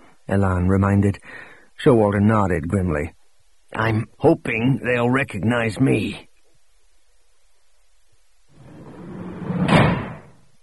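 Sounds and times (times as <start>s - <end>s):
speech: 0.3s - 6.3s
door slamming shut: 9.0s - 10.4s.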